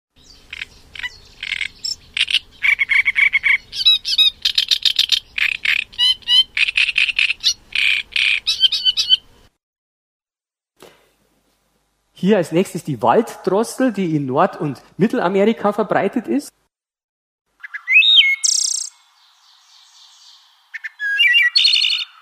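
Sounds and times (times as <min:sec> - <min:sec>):
great reed warbler singing harsh grating chatter: 0:00.2 - 0:09.3, 0:17.6 - 0:22.1
speech: 0:12.2 - 0:16.6.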